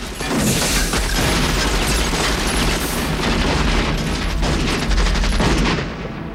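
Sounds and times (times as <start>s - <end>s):
sustained gunfire as soldiers open fire in an execution: 0.0s - 6.3s.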